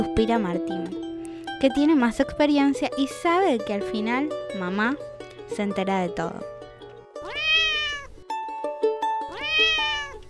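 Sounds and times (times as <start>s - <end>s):
speech: 0.1s - 1.0s, 1.6s - 6.5s
very small thin kitten meowing: 7.2s - 8.2s, 9.3s - 10.2s.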